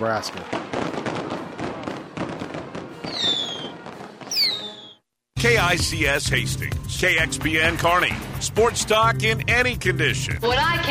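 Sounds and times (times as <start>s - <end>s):
speech: 0.0s - 1.5s, 5.4s - 10.8s
fireworks popping and banging: 0.0s - 5.0s
shrill whistling rockets sweeping downward in pitch: 0.4s - 5.0s.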